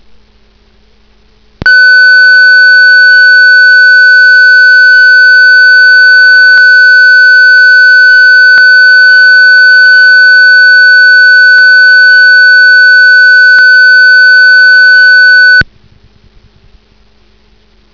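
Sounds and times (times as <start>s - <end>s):
1500 Hz test tone: 1.6s - 5.5s, 6.6s - 15.6s.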